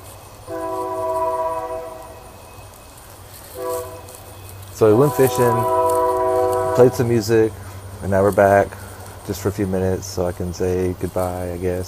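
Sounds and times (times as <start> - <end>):
low rumble of passing train: 0.0 - 11.8
train horn blasts: 0.5 - 2.5, 3.5 - 7.6
speech: 4.8 - 5.8, 6.8 - 11.8.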